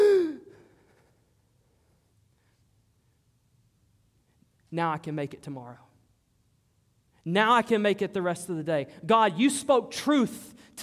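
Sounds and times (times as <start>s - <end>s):
person gasping for air: 0.0s - 1.1s
speech: 4.7s - 5.9s, 7.2s - 10.8s.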